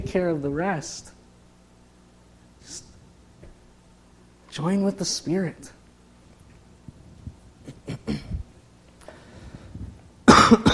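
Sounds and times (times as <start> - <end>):
speech: 0.1 - 1.2, 2.6 - 2.9, 4.5 - 5.8, 7.9 - 8.4
person coughing from lungs affected by flu: 7.6 - 8.4, 10.3 - 10.7.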